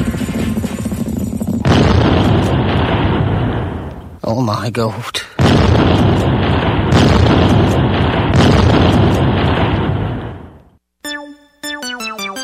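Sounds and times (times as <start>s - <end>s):
cannons firing: 0.0s - 4.2s, 5.4s - 10.7s
speech: 4.5s - 6.3s.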